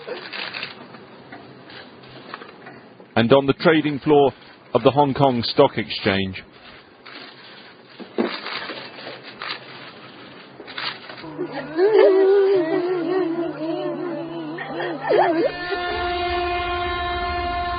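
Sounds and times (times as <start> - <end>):
speech: 3.2 - 6.6
laughter: 11.5 - 16.3
train horns across China's railway network blaring during national mourning: 15.1 - 17.7.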